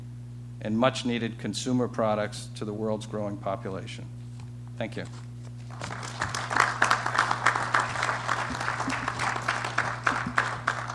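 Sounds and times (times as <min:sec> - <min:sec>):
faint low hum: 0:00.0 - 0:10.9
speech: 0:00.6 - 0:04.2, 0:04.8 - 0:06.0
audience applauding after a speech: 0:05.7 - 0:10.9.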